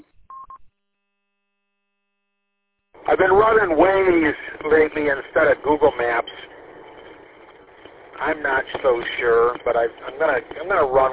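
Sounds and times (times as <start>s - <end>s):
telephone tones of an incoming phone call: 0.0s - 0.6s
faint low hum: 0.0s - 11.1s
speech: 3.1s - 6.6s, 8.2s - 11.1s.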